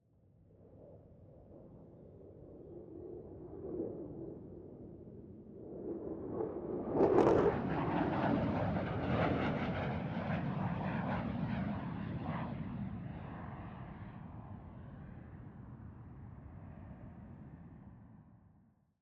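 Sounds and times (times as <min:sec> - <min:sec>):
F-16C Fighting Falcon fighter jet passing by fast and curling away: 0:06.1 - 0:15.2.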